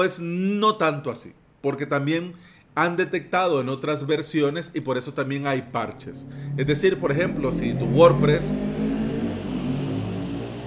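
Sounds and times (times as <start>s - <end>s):
speech: 0.0s - 8.8s
loud motorcycle engines revving outside: 6.0s - 10.6s.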